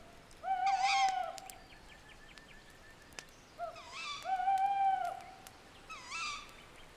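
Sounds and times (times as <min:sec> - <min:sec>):
faint hiss of quiet night air: 0:00.0 - 0:06.9
owl hooting at night: 0:00.4 - 0:01.5, 0:03.6 - 0:06.5.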